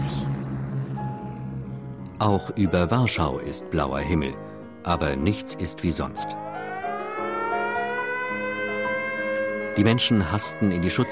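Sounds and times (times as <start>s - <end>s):
air raid sirens wailing in Warsaw: 0.0s - 3.4s, 6.4s - 11.1s
speech: 2.2s - 6.4s, 9.8s - 11.1s.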